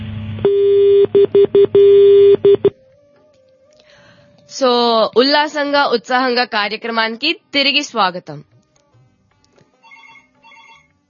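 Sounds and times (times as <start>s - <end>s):
faint hum: 0.0s - 4.6s
telephone line tone on a call being disconnected: 0.4s - 2.7s
speech: 0.4s - 2.8s, 4.5s - 8.5s.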